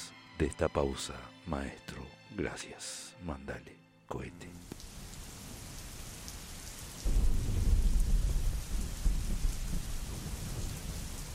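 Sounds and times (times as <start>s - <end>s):
speech: 0.4s - 4.8s
steady hissing rainfall: 4.6s - 11.3s
deep rumble of thunder: 7.0s - 11.3s.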